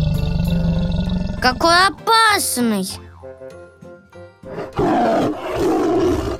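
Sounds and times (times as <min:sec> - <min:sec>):
tiger roaring: 0:00.0 - 0:01.4, 0:04.5 - 0:06.3
speech: 0:01.4 - 0:03.0.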